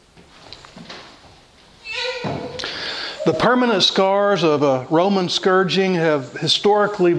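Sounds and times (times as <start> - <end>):
door hinge creaking: 1.8 - 3.6
speech: 3.2 - 7.1.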